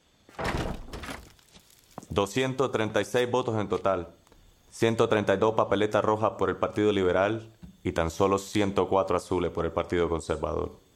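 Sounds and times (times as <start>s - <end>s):
room door closing in a house: 0.3s - 1.4s
speech: 2.2s - 10.8s.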